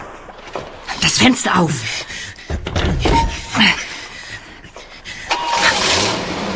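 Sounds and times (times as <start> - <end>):
speech: 1.1 - 2.1, 3.6 - 3.9
car engine starting up: 5.3 - 6.5
car revving and driving away: 5.5 - 6.5.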